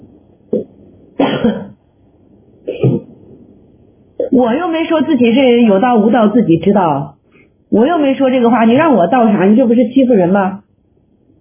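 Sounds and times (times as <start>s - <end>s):
teacher coughing and clearing throat: 0.5s - 1.8s, 2.6s - 3.2s, 4.2s - 4.4s
speech: 1.4s - 1.7s, 4.4s - 10.6s.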